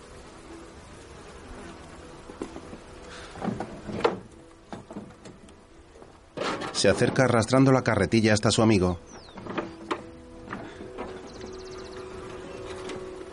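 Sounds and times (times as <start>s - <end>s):
bees buzzing near hives: 0.0s - 13.3s
wooden knocks and clatters from handling equipment: 2.2s - 7.6s, 9.1s - 13.3s
speech: 6.8s - 9.1s.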